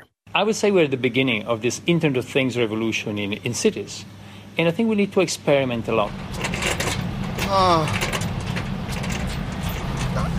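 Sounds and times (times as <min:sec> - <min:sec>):
speech: 0:00.4 - 0:06.7, 0:07.5 - 0:08.2
Department of Public Works truck engine running: 0:05.8 - 0:10.3.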